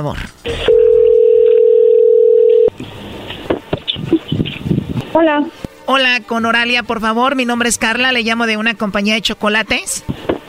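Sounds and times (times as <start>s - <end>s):
speech: 0.0s - 0.9s, 5.2s - 10.3s
telephone ringing tone: 0.5s - 2.8s.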